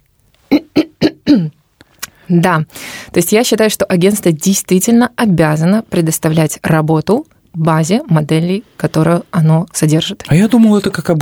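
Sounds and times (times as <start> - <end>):
person coughing: 0.5 - 1.6
breathing: 2.0 - 3.2
speech: 2.3 - 11.2.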